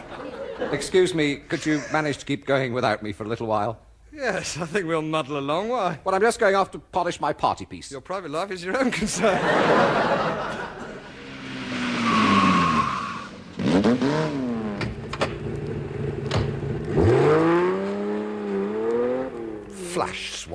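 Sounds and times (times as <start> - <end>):
laughter: 0.0 - 2.2, 8.7 - 11.2
speech: 0.6 - 10.6, 20.1 - 20.5
small car engine revving and driving past: 11.0 - 20.2.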